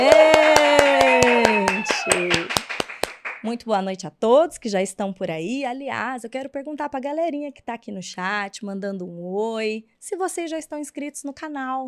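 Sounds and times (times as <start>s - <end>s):
sustained cheering voice: 0.0s - 2.6s
steady rhythmic hand clapping: 0.0s - 3.5s
speech: 3.5s - 11.8s.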